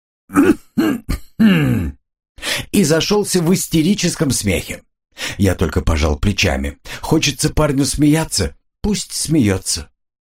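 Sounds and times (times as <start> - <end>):
voice imitating choked coughing: 0.3 - 2.0
speech: 2.8 - 9.9.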